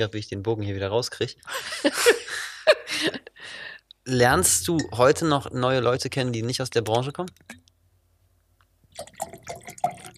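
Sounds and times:
speech: 0:00.0 - 0:07.6
laughter: 0:01.5 - 0:03.3
water pouring into a glass: 0:09.0 - 0:10.1.

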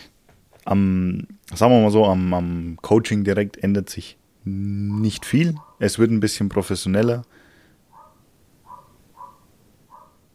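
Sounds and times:
quiet hum: 0:00.0 - 0:10.3
speech: 0:00.7 - 0:07.4
dog barking: 0:05.2 - 0:05.8, 0:07.9 - 0:10.2.

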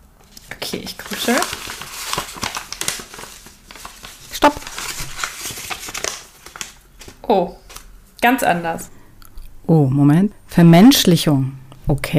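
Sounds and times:
speech: 0:00.6 - 0:01.6, 0:07.3 - 0:07.6, 0:08.2 - 0:09.0, 0:09.7 - 0:12.1
hand rummaging in a crinkly rustling bag: 0:01.0 - 0:07.2.

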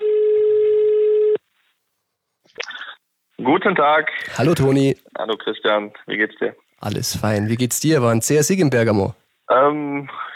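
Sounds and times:
telephone tone as a call is placed: 0:00.0 - 0:01.4
speech: 0:03.4 - 0:10.3.

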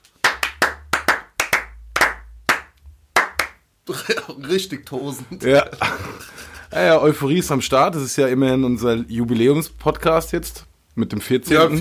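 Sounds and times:
hand clapping: 0:00.0 - 0:03.6
speech: 0:03.9 - 0:11.7
laughter: 0:05.2 - 0:06.7, 0:11.5 - 0:11.7.

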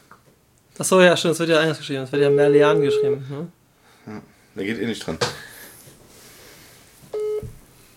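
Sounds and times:
speech: 0:00.8 - 0:05.4
outgoing video call ringing tone on a phone: 0:02.2 - 0:03.3, 0:07.2 - 0:07.5.

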